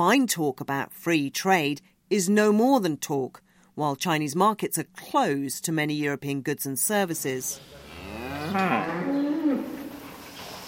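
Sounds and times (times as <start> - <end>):
speech: 0.0 - 7.8, 8.5 - 9.1
cow mooing on a dairy farm: 7.8 - 10.0.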